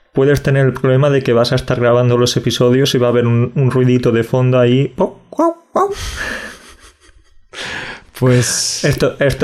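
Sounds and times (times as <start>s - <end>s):
speech: 0.2s - 6.5s, 8.2s - 9.4s
dog barking: 5.4s - 6.0s.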